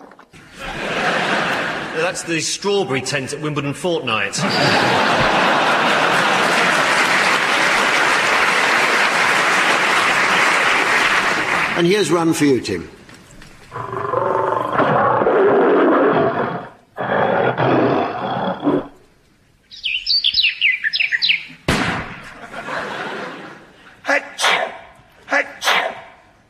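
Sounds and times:
laughter: 0.4 - 2.4, 4.2 - 11.7, 22.2 - 24.3
speech: 2.0 - 5.6, 11.8 - 13.0
voice imitating a lion's roar: 13.7 - 19.0, 24.1 - 26.2
chirpy bird-like whistles: 19.7 - 21.5
sharp crack: 21.6 - 22.5
sneeze-like bursts: 24.1 - 26.2.

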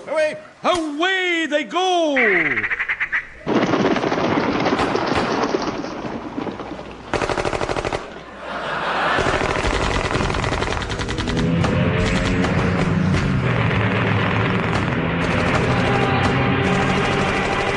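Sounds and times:
speech: 0.0 - 2.8
gunfire volleys at a grouse shooting party: 3.4 - 8.2, 9.0 - 17.7
laughter: 8.2 - 9.7.

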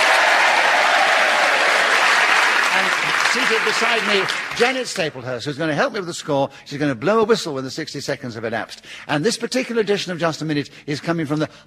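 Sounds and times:
studio audience applauding to welcome comedy panel game panellists: 0.0 - 5.2
speech: 2.8 - 11.6.

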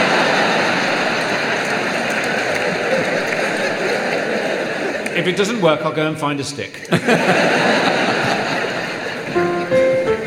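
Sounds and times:
toilet flushing: 0.0 - 5.0
laughter: 0.0 - 5.2, 6.8 - 10.2
speech: 5.2 - 7.7.

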